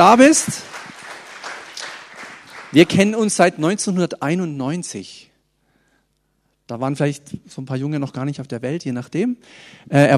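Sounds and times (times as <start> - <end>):
speech: 0.0 - 0.8, 2.7 - 5.3, 6.7 - 10.1
small crowd applauding a guest: 0.0 - 3.4.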